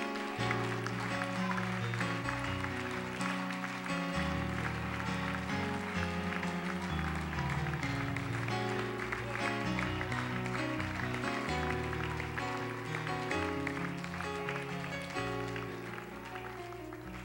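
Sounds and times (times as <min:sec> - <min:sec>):
large crowd applauding: 0:00.0 - 0:17.2
loud sustained music of held chords: 0:00.0 - 0:17.2.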